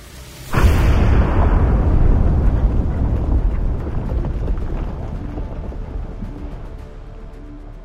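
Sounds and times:
massive explosion with deep roaring rumble: 0.5s - 6.2s.

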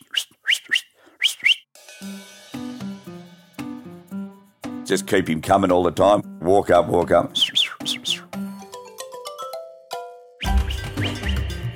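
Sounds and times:
dog training run whistle pips: 0.0s - 1.7s, 7.4s - 8.3s, 10.4s - 11.6s
speech: 4.9s - 7.4s.

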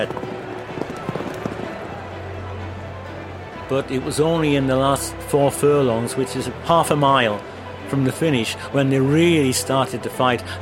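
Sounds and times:
speech: 0.0s - 0.3s, 3.7s - 10.6s
racehorses galloping at the start of a race: 0.0s - 2.1s.

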